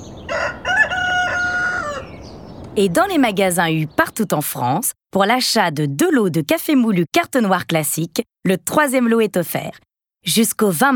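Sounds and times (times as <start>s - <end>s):
rooster crowing: 0.0s - 2.4s
speech: 2.8s - 10.9s.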